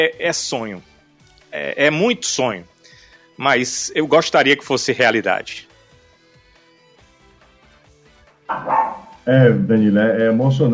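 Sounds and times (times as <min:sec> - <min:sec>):
speech: 0:00.0 - 0:00.9, 0:01.5 - 0:02.7, 0:03.4 - 0:05.7, 0:08.5 - 0:10.7
dog barking excitedly: 0:08.5 - 0:09.2.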